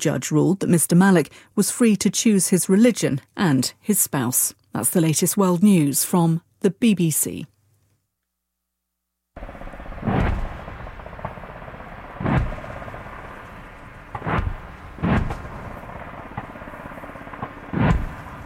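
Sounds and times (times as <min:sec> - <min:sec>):
speech: 0:00.0 - 0:07.6
gunfire and artillery blasts from a military live-fire exercise near Townsville, Queensland, Australia: 0:09.4 - 0:18.4
low rumble: 0:09.4 - 0:18.4.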